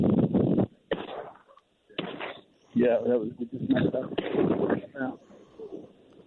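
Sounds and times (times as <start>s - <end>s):
shotgun blasts fired at redhead ducks over open ground: 0.9s - 1.4s, 2.0s - 2.4s
excited voices talking: 2.8s - 5.6s.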